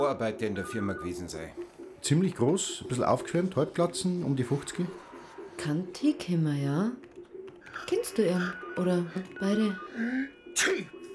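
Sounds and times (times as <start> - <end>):
speech: 0.0 - 7.0, 7.8 - 11.0
sharp sneeze preceded by a drawn-in breath: 10.6 - 10.9.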